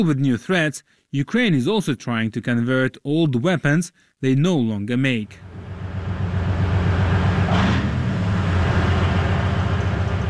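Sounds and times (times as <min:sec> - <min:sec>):
speech: 0:00.0 - 0:05.5
Soviet-made wheeled armored anti-aircraft missile vehicle driving: 0:05.4 - 0:10.2.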